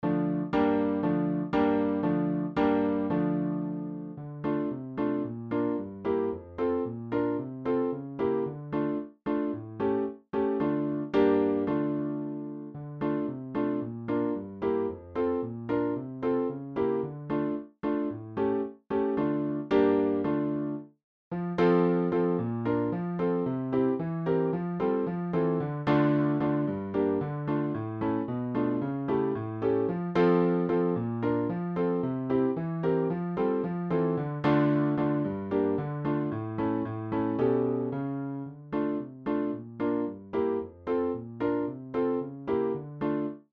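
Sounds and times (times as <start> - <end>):
czardas piano piece: 0.0 - 43.5.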